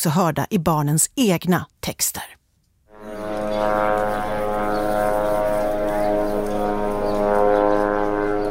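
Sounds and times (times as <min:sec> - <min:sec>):
speech: 0:00.0 - 0:02.4
military surveillance drone propeller hum overhead: 0:02.9 - 0:08.4.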